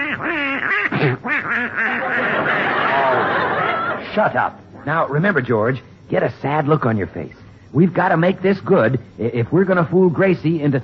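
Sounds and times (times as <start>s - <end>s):
person imitating duck quacks: 0.0s - 2.6s
speech: 0.1s - 3.4s, 4.0s - 10.8s
laughter: 0.9s - 4.5s.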